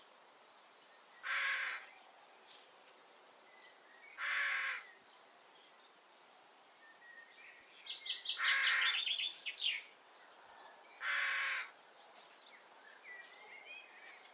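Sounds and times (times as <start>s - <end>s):
Corvus corone carrion crow giving hoarse caws: 1.2s - 1.9s, 4.2s - 4.9s, 8.4s - 9.0s, 11.0s - 11.8s.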